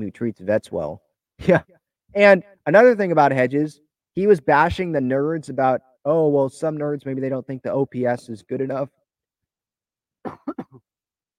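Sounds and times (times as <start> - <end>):
speech: 0.0 - 9.0, 10.2 - 10.9
throat clearing: 10.2 - 10.9.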